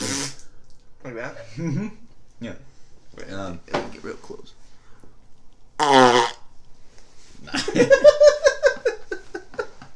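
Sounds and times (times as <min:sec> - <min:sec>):
wet fart noise: 0:00.0 - 0:00.5, 0:05.8 - 0:06.5
speech: 0:01.0 - 0:04.6, 0:07.4 - 0:08.0
laughter: 0:07.5 - 0:09.9.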